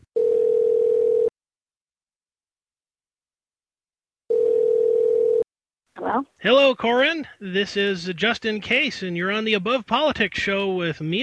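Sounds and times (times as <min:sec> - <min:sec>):
telephone ringing tone while a call is placed: 0:00.1 - 0:01.3, 0:04.3 - 0:05.5
speech: 0:06.1 - 0:11.2.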